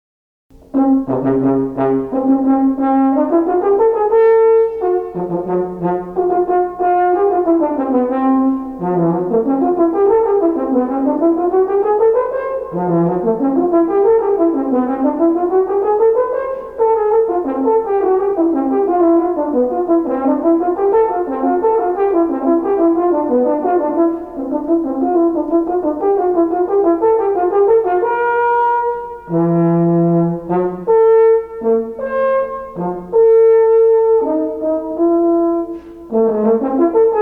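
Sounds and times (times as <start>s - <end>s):
french horn: 0.5s - 37.2s.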